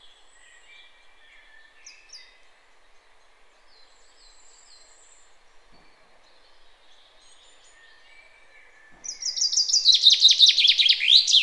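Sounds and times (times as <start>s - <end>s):
common chaffinch Fringilla coelebs song: 0.0s - 11.4s.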